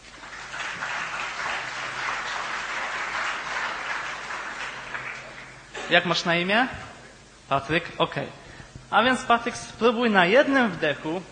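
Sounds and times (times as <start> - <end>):
audience applause for a volunteer: 0.0 - 5.7
speech: 5.9 - 6.8, 7.5 - 11.2.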